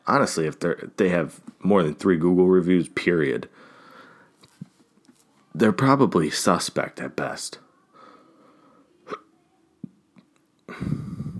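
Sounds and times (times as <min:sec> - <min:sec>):
speech: 0:00.1 - 0:03.7, 0:05.6 - 0:07.6
soft breathy background: 0:03.5 - 0:04.6, 0:07.9 - 0:09.0, 0:10.7 - 0:11.3
person hiccuping: 0:09.1 - 0:09.3.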